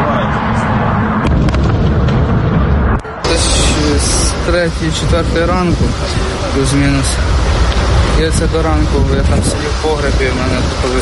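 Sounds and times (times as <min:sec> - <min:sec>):
explosions rumbling after incoming strikes: 0:00.6 - 0:09.6
sharp cracks and pops of explosions: 0:01.2 - 0:03.2
speech: 0:04.5 - 0:07.4, 0:08.2 - 0:11.0.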